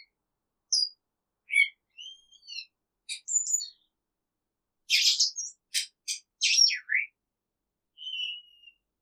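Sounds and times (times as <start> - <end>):
exotic cage bird calling: 1.5 - 3.8, 4.9 - 7.1, 8.0 - 8.8.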